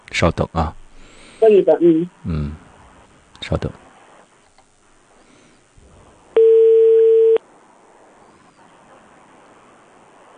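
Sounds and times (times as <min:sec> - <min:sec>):
speech: 0:00.2 - 0:00.8, 0:01.4 - 0:02.6, 0:03.4 - 0:03.8
telephone ringback tone: 0:06.4 - 0:07.4.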